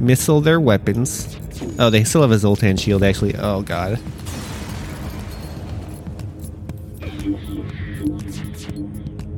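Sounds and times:
speech: 0:00.0 - 0:04.4
crackling debris: 0:04.0 - 0:06.5
video game spaceship explosion: 0:04.1 - 0:06.4.

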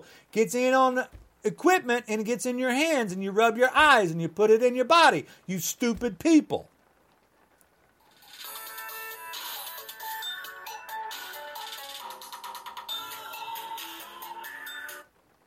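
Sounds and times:
speech: 0:00.0 - 0:06.7
mobile phone ringing with bright electronic melody: 0:08.2 - 0:15.1.

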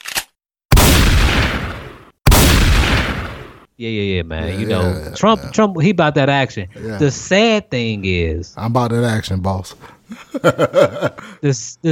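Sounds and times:
gunshots: 0:00.7 - 0:03.6
speech: 0:03.8 - 0:11.9
laughter: 0:04.4 - 0:05.6, 0:10.1 - 0:11.4.

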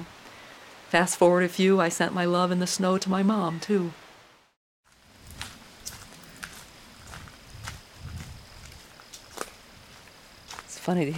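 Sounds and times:
speech: 0:00.9 - 0:04.0, 0:10.9 - 0:11.1
footsteps on gravel and fallen leaves outdoors: 0:04.9 - 0:11.1.

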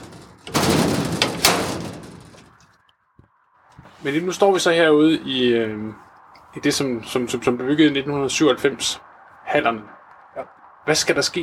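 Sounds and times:
heavy steel gate opening at a mink farm: 0:00.0 - 0:02.8
steel gate metallic clanks: 0:00.0 - 0:02.8
speech: 0:04.0 - 0:11.4.

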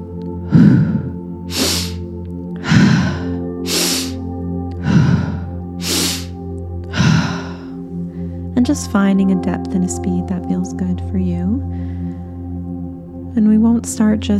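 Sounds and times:
soft sustained tonal bed: 0:00.0 - 0:14.3
forceful breathing practice with nose inhales and mouth exhales: 0:00.4 - 0:08.5
speech: 0:08.7 - 0:12.2, 0:13.4 - 0:14.3.

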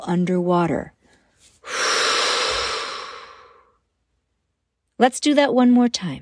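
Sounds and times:
speech: 0:00.0 - 0:01.0, 0:05.0 - 0:06.1
deep breath during a guided breathing exercise with a ball: 0:01.1 - 0:03.8.

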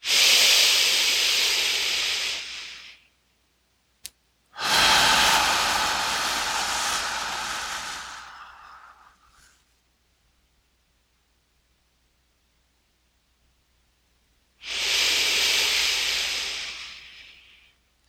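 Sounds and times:
long breathy exhales during a guided relaxation and meditation session: 0:00.0 - 0:03.0, 0:04.6 - 0:09.6, 0:14.6 - 0:18.0.

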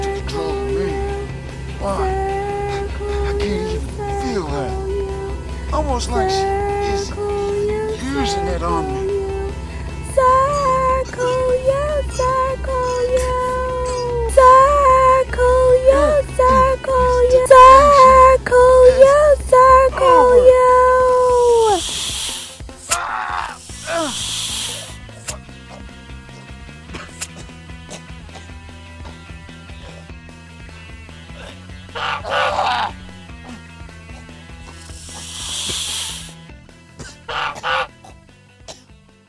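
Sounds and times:
wavering vocal cries: 0:00.0 - 0:22.0, 0:22.8 - 0:30.2, 0:31.2 - 0:36.4, 0:37.0 - 0:38.1
steady musical background: 0:00.0 - 0:39.2
speech: 0:05.8 - 0:06.6, 0:08.3 - 0:09.1
snake hissing: 0:21.2 - 0:25.8, 0:31.3 - 0:33.2, 0:34.1 - 0:36.5
goose honking: 0:31.9 - 0:33.0, 0:37.3 - 0:38.0.

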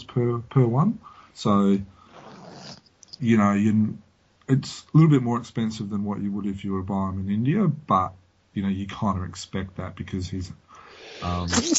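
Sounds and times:
speech: 0:00.2 - 0:02.0, 0:03.2 - 0:10.6, 0:11.2 - 0:11.7
sneeze: 0:11.2 - 0:11.7.

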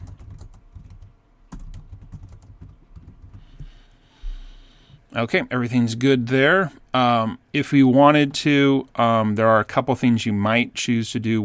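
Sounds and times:
typing sample text on a computer keyboard: 0:00.0 - 0:03.8
speech: 0:05.1 - 0:11.4.

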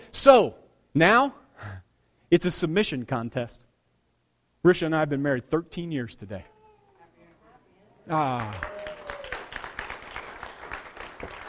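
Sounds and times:
speech: 0:00.2 - 0:03.7, 0:04.6 - 0:06.5, 0:08.1 - 0:08.7
crowd applauding: 0:08.1 - 0:11.4.

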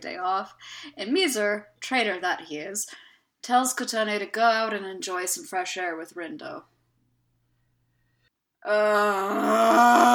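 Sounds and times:
speech: 0:00.0 - 0:06.7, 0:08.6 - 0:10.1
person groaning: 0:08.7 - 0:10.1.

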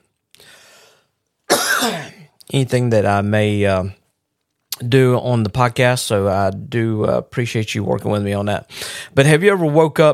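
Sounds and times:
person coughing with raspy throaty edge: 0:01.5 - 0:02.3
speech: 0:01.8 - 0:04.0, 0:04.8 - 0:10.1.

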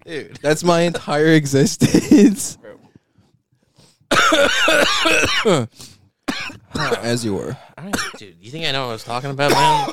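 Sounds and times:
speech: 0:00.0 - 0:02.6, 0:04.3 - 0:06.0, 0:06.8 - 0:09.9
person coughing in a raspy strained fit: 0:04.1 - 0:05.7, 0:06.3 - 0:07.2, 0:07.9 - 0:08.3, 0:09.4 - 0:09.9.

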